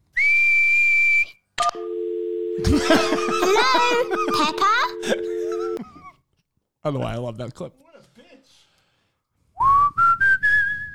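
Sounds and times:
person whistling a high note through pursed lips: 0.0 - 1.3, 9.6 - 10.9
speech: 2.6 - 5.4, 6.8 - 7.9
laughter: 2.6 - 6.0.

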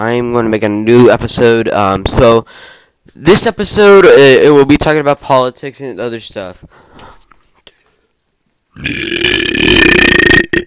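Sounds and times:
speech: 0.0 - 7.2, 8.8 - 10.4
loud burp: 8.8 - 10.6.

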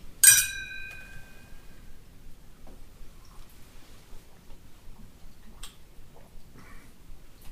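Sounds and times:
two glasses of Burgundy wine clinking in a toast: 0.2 - 1.8.

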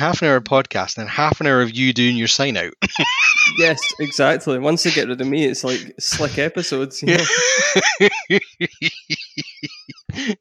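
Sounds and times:
speech: 0.0 - 10.4
fit of coughing: 2.8 - 8.3
laughter: 2.8 - 10.4.

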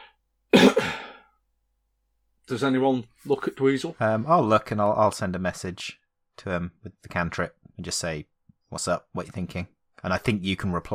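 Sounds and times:
person coughing to get attention: 0.5 - 1.2
speech: 2.5 - 10.9.

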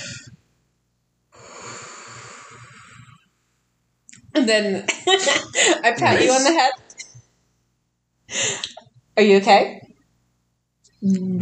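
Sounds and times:
person imitating a very long exhale: 1.4 - 3.2
speech: 4.4 - 6.8, 9.2 - 9.8, 11.0 - 11.4
laughter: 4.9 - 6.7.

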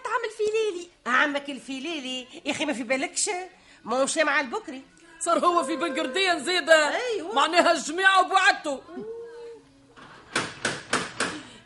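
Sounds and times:
speech: 1.2 - 9.2
loud knocks on a door: 10.3 - 11.4.

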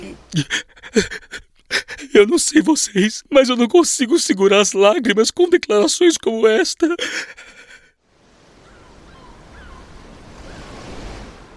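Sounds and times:
speech: 0.1 - 1.3, 2.2 - 7.5
laughter: 0.3 - 3.1
sea waves breaking on the shore: 7.4 - 11.5.

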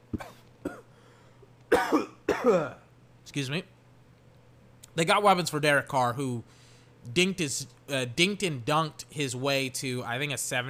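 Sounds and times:
faint steady hum: 0.0 - 10.6
person with recurring cough coughing: 0.1 - 1.0, 1.7 - 2.9
speech: 2.4 - 3.8, 5.0 - 10.6.

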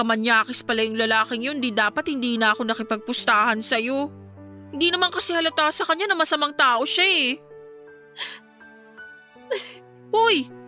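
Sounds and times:
speech: 0.0 - 7.5, 8.2 - 8.4, 9.5 - 10.6
sharp sniffles: 8.2 - 8.6
person crying quietly with faint whimpering: 9.5 - 9.8.

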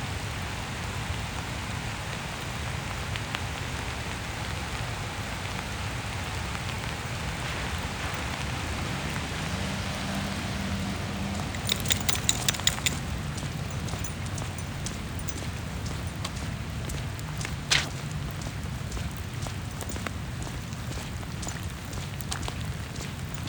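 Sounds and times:
steady rain on a neighborhood street in Central Phoenix Arizona: 0.0 - 23.4
person and dog walking on sidewalks: 5.6 - 23.4
sharp clicks and taps: 11.5 - 17.9.

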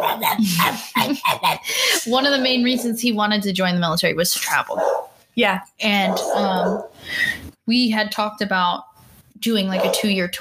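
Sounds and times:
two dogs barking: 0.0 - 0.3, 2.1 - 3.0, 4.6 - 5.2, 5.9 - 7.0, 9.8 - 10.2
speech: 0.2 - 10.3.

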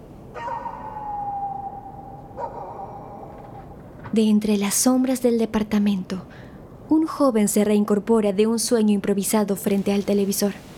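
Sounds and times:
dog howling: 0.3 - 3.7
speech: 4.1 - 10.7.

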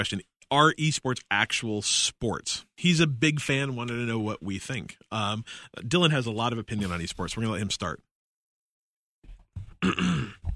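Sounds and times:
speech: 0.0 - 8.1, 9.8 - 10.5
person clearing throat: 9.8 - 10.5.

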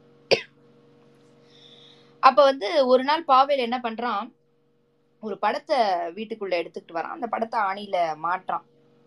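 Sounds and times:
faint steady hum: 0.0 - 9.0
person coughing: 0.3 - 0.5
speech: 2.2 - 4.4, 5.2 - 8.7.

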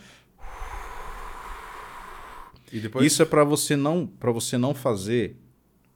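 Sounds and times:
breath blown through a breathing-trainer tube with a small ball: 0.0 - 2.7
speech: 2.7 - 5.5.

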